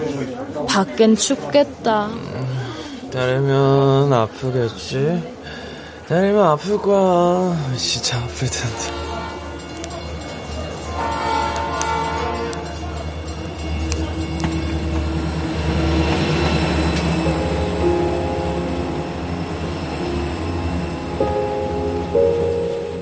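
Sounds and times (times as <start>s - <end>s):
speech: 0.5s - 5.4s, 6.1s - 9.0s
train rumbling past with metallic ringing: 4.2s - 22.9s
train horn: 8.6s - 9.9s, 10.9s - 13.0s.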